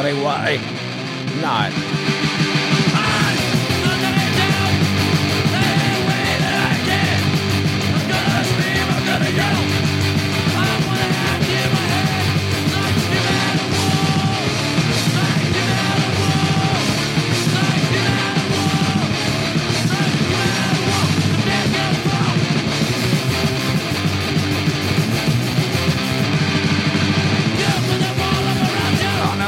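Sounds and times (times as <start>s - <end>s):
speech: 0.0s - 2.6s
loud dense heavy rock song with distorted instruments: 0.0s - 29.4s
harsh screamed vocals: 2.9s - 22.6s, 27.6s - 29.4s.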